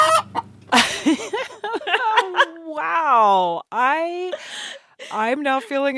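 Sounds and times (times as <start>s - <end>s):
flock of chickens clucking excitedly while one lays an egg: 0.0s - 0.6s
laughter: 0.7s - 3.0s, 4.2s - 5.9s
speech: 3.2s - 5.9s.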